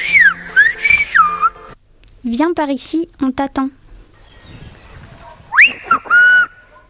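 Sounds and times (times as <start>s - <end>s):
whistled language phrase of La Gomera: 0.0s - 1.7s, 5.5s - 6.7s
speech: 2.2s - 3.8s.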